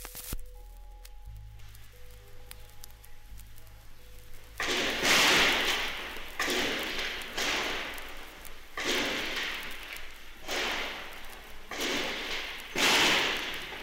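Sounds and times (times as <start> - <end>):
low electrical hum: 0.0 - 13.8
gunshots echoing in broadcasting station offices during an attack: 4.3 - 13.8.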